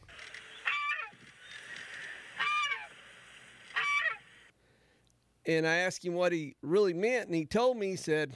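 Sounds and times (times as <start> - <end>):
quiet outdoor ambience: 0.0 - 8.3
goose honking: 0.5 - 3.0, 3.7 - 4.4
speech: 5.5 - 8.3.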